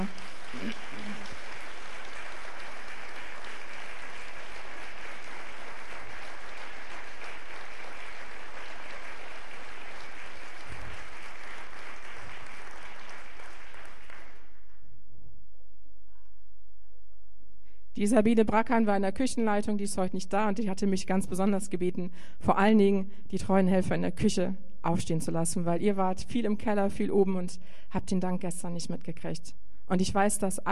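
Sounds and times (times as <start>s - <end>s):
audience applause of many hands clapping: 0.0s - 14.7s
speech: 18.0s - 30.7s.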